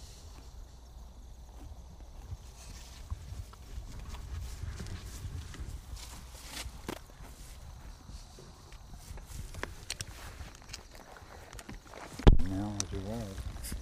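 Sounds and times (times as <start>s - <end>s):
pair of horses walking with hooves clopping: 0.3s - 13.7s.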